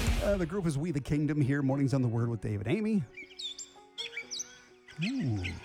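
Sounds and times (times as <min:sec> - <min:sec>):
speech: 0:00.2 - 0:03.2, 0:05.0 - 0:05.6
bird calls recorded on a phone: 0:03.2 - 0:05.6.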